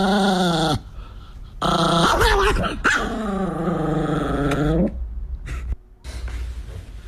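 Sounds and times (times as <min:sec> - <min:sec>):
chihuahua growling: 0:00.0 - 0:05.0
noise: 0:00.0 - 0:07.0.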